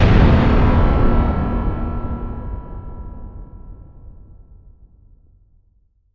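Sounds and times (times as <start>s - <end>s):
sci-fi explosion: 0.0s - 4.1s.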